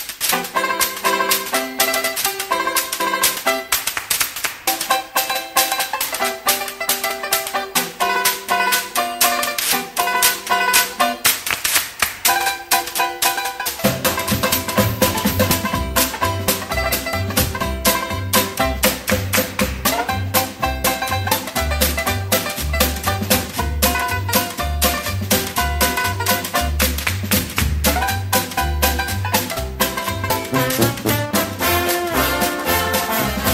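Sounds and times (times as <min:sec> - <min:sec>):
banjo band playing: 0:00.2 - 0:33.5.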